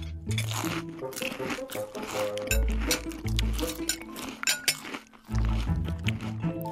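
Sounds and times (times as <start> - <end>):
crunchy bites of toast with scrambled eggs: 0.0 - 6.7
low music: 0.0 - 6.7
cutlery clinking on plate: 3.7 - 4.9.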